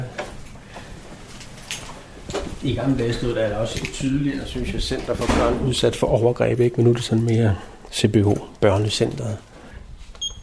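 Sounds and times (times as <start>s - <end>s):
speech: 2.6s - 9.5s
door being opened: 4.6s - 6.1s.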